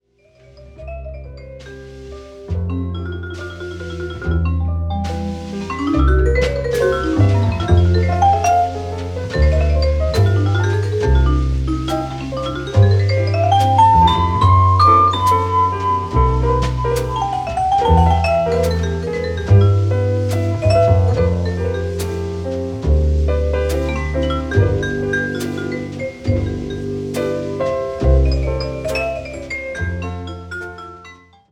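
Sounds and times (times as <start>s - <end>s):
jazz vibraphone: 0.2s - 31.5s.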